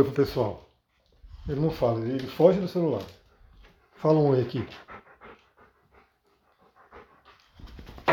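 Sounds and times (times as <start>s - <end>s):
speech: 0.0s - 0.6s, 1.4s - 3.2s, 4.0s - 4.9s
dog panting softly and rhythmically: 0.7s - 8.1s.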